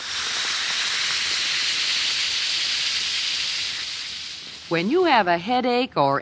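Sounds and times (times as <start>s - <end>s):
Alka-Seltzer tablet fizzing in a glass of water: 0.0s - 4.8s
speech: 4.7s - 6.2s.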